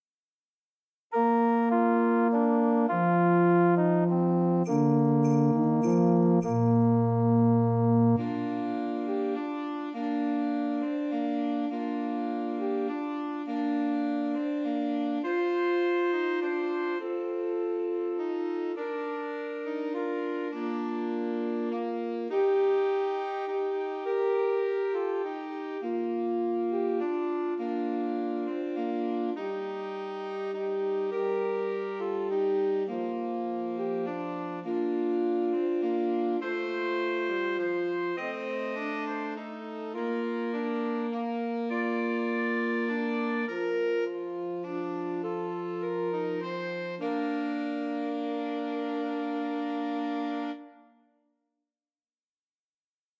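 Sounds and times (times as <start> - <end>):
trio of two alto saxophones and tenor saxophone: 1.1 - 50.8.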